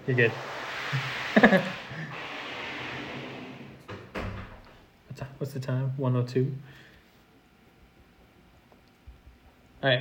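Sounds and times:
speech: 0.0 - 2.3, 5.4 - 6.9
door opening with a sustained rushing scrape: 0.0 - 4.7
laughter: 1.3 - 2.2
door knocks and clunks as it moves and settles: 3.9 - 4.7.

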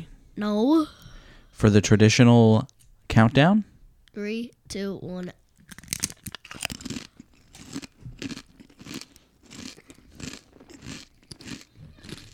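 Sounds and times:
speech: 0.4 - 5.8
biting and crunching a large three-inch chili flavored chip: 5.6 - 12.3
chewing: 5.6 - 12.3.

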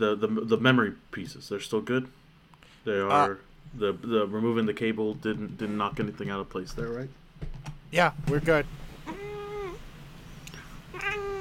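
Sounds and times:
speech: 0.0 - 2.2, 2.8 - 8.8
faint low hum: 0.0 - 11.4
cat meowing: 9.0 - 9.9, 10.9 - 11.4.

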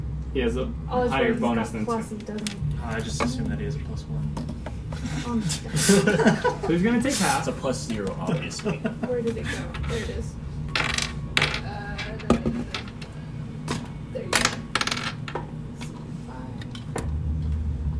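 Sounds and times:
low hum: 0.0 - 17.9
speech: 0.4 - 10.4
laughter: 4.9 - 10.3
dice clattering across a hard tabletop: 10.7 - 13.2, 14.3 - 16.0.

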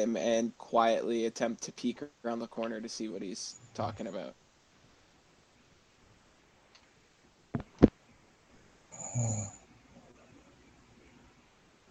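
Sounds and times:
speech: 0.0 - 4.4, 9.2 - 9.6
sleeping person snoring and snorting: 8.9 - 9.6.

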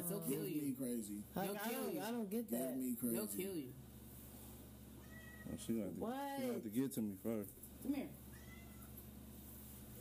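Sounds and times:
steady low hum: 0.0 - 9.9
speech: 0.1 - 3.9, 5.4 - 8.2
cat meowing: 5.0 - 5.6, 8.3 - 9.0.

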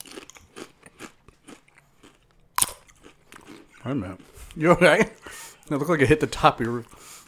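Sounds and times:
crunching Doritos tortilla chips being chewed: 0.0 - 4.4
speech: 3.8 - 7.2.

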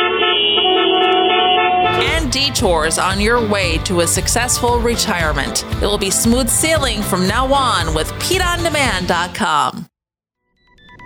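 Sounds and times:
car horn honking: 0.0 - 5.1
speech: 2.4 - 9.9.

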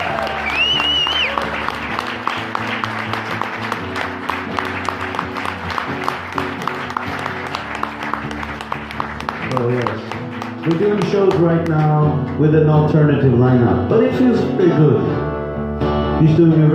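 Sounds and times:
audience applause: 0.0 - 12.5
brief whistle: 0.4 - 1.4
speech: 10.7 - 15.2, 16.2 - 16.7.

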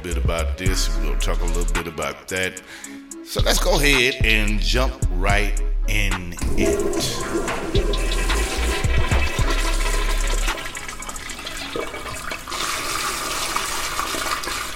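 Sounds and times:
speech: 0.0 - 8.4
toilet flushing: 6.4 - 14.7.

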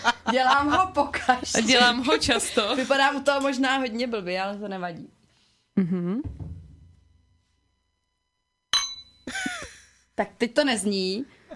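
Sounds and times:
laughter: 0.0 - 3.2
speech: 0.3 - 5.2, 5.8 - 6.5, 10.2 - 11.4
sharp clinks on a glass: 8.7 - 9.3.

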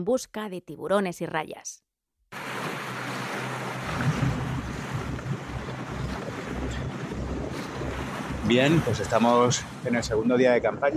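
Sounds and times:
speech: 0.0 - 1.9, 8.5 - 10.9
wind and water rushing around a boat on open sea: 2.3 - 10.9
low boat engine rumble: 2.4 - 10.9.

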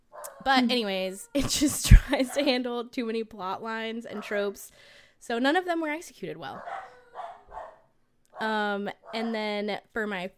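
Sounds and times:
household dogs barking: 0.0 - 0.7, 4.1 - 4.5, 6.5 - 9.4
speech: 0.4 - 6.9, 8.4 - 10.3.

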